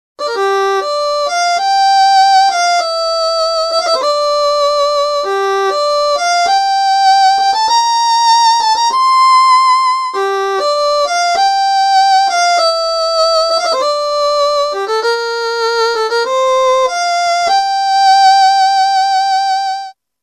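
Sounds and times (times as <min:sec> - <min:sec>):
violin with wet reverb: 0:00.2 - 0:20.0.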